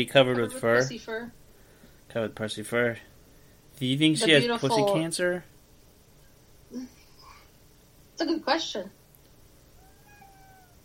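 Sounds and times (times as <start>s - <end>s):
speech: 0.0s - 1.4s, 2.1s - 3.1s, 3.8s - 5.5s, 6.7s - 7.0s, 8.2s - 9.0s
steady low hum: 0.0s - 10.8s
cat meowing: 9.8s - 10.8s.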